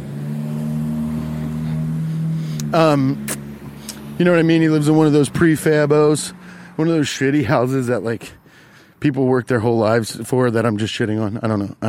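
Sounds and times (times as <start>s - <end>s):
car engine revving loudly outside: 0.0s - 8.7s
speech: 2.7s - 3.4s, 4.2s - 8.4s, 9.0s - 11.8s.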